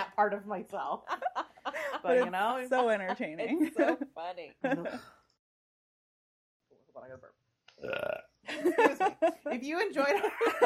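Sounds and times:
speech: 0:00.2 - 0:01.4, 0:02.0 - 0:05.2, 0:07.0 - 0:10.6
loud deep drawn-out burp: 0:07.8 - 0:08.4.

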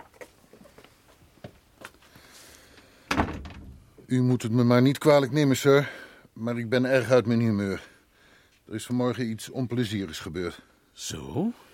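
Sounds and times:
door swinging shut with a solid thud: 0:03.1 - 0:04.0
speech: 0:04.1 - 0:07.9, 0:08.7 - 0:11.6.

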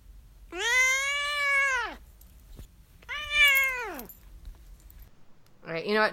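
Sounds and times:
domestic cat meowing: 0:00.5 - 0:02.0, 0:03.1 - 0:04.1
speech: 0:05.8 - 0:06.1.

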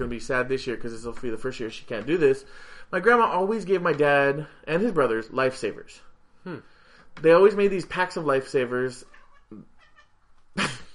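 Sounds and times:
speech: 0:00.0 - 0:09.7, 0:10.6 - 0:10.8
female cat chirping and meowing: 0:09.0 - 0:10.2.

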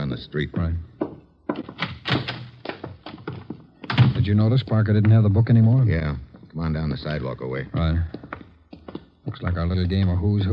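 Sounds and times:
speech: 0:00.1 - 0:01.0, 0:04.2 - 0:08.3, 0:09.3 - 0:10.5
apartment door thudding shut: 0:03.3 - 0:04.4.

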